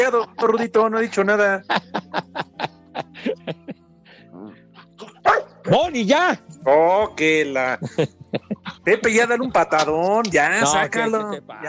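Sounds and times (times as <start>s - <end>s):
laughter: 0.0s - 4.0s, 7.6s - 11.6s
speech: 0.1s - 2.7s, 5.7s - 11.6s
dog barking in short yaps: 5.0s - 5.7s.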